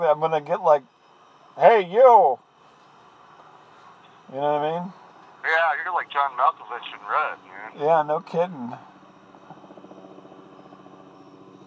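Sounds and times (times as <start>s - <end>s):
speech: 0.0s - 1.0s, 1.6s - 2.5s, 4.3s - 8.9s
helicopter engine droning: 5.3s - 11.6s
helicopter rotor blades thumping overhead: 9.3s - 11.6s.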